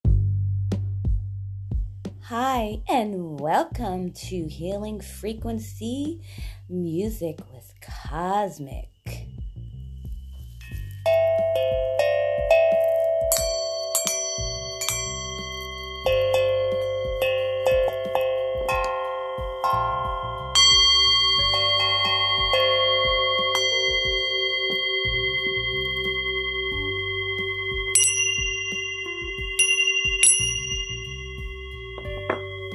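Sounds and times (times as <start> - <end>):
steady low pulse from a chakra drum: 0.0 - 2.9, 3.7 - 32.7
speech: 2.2 - 8.9
Tibetan singing bowl humming with sustained tones: 9.7 - 32.7
Tibetan dragon tincture bells chiming: 10.2 - 32.7.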